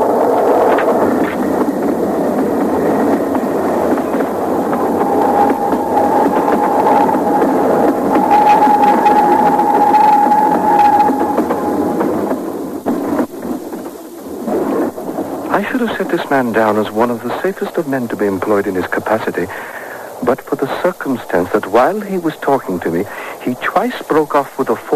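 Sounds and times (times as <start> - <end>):
train wheels rumbling on track: 0.0 - 24.9
high metallic squeal of a passing train: 5.0 - 12.0
speech: 15.8 - 19.8, 20.6 - 24.9.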